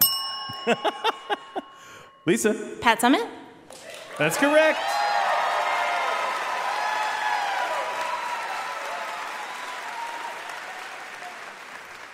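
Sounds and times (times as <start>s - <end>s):
speech: 0.6s - 1.4s, 2.2s - 5.0s
whoops from the audience: 3.8s - 11.6s
studio audience clapping and cheering: 3.8s - 12.1s.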